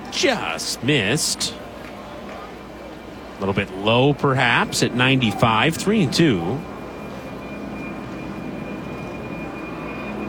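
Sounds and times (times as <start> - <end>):
speech: 0.2 - 1.7, 3.4 - 6.7
jet aircraft passing overhead during a baseball game: 4.6 - 10.2.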